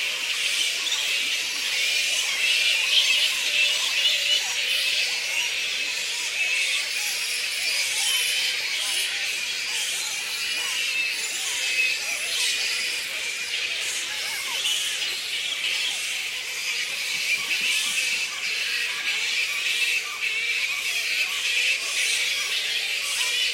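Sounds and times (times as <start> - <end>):
colony of black fruit bats Pteropus alecto squeaking and squabbling: 0.0 - 23.5.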